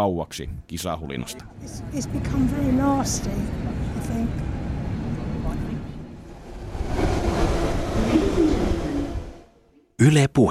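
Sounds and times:
speech: 0.0 - 4.6, 10.0 - 10.4
train rumbling at a station: 1.5 - 9.7.

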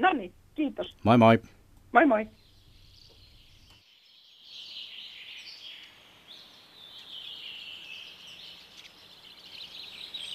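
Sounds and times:
speech: 0.0 - 0.4, 1.1 - 2.4
soft steady hiss: 0.0 - 10.3
Common Redpoll calls flying over: 2.2 - 10.3.

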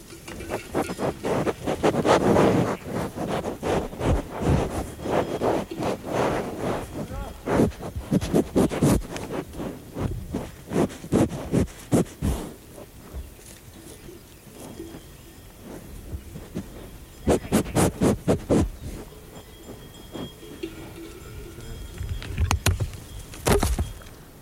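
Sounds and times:
rustling microphone handling noise: 0.0 - 24.4
microphones being knocked over with thumps and clunks: 22.4 - 24.1.

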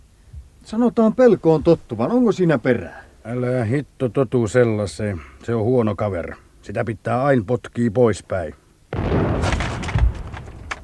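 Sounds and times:
speech: 0.7 - 9.0
scattered debris crackle from an artillery explosion: 8.9 - 10.8
six-inch artillery shell exploding with a deep rolling rumble: 8.9 - 10.8.

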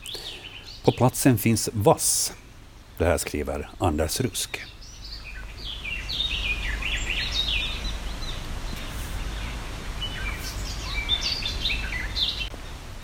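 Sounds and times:
Garden Warbler song: 0.0 - 13.0
speech: 0.8 - 2.4, 3.0 - 4.8.

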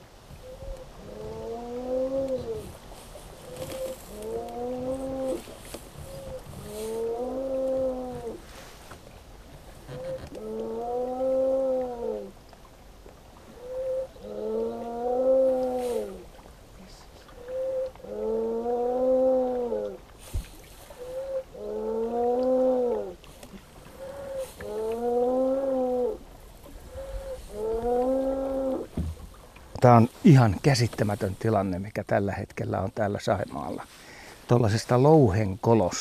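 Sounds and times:
30-year-old Saimaa ringed seal calling from a rock den crevice on Lake Saimaa: 0.4 - 2.8, 3.4 - 8.4, 9.9 - 12.4, 13.5 - 16.3, 17.4 - 20.0, 20.9 - 23.2, 23.9 - 29.0
speech: 29.8 - 35.9.

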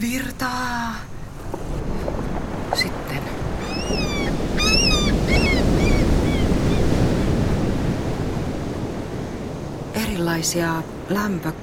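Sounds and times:
waves washing against the shore of an open freshwater lake: 0.0 - 11.6
wind blowing across the microphone: 0.0 - 11.6
speech: 0.1 - 1.1, 10.1 - 11.6
high bird calls: 2.7 - 7.5.

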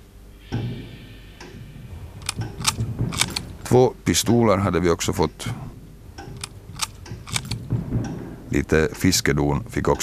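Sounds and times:
camera film advancing with ratcheting clicks: 2.2 - 3.5, 6.3 - 7.6
speech: 3.7 - 5.7, 8.5 - 10.0.

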